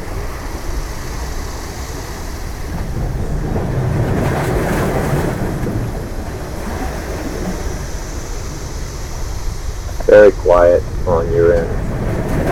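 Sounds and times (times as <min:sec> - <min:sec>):
ocean waves: 0:00.0 - 0:12.4
speech: 0:10.2 - 0:11.8.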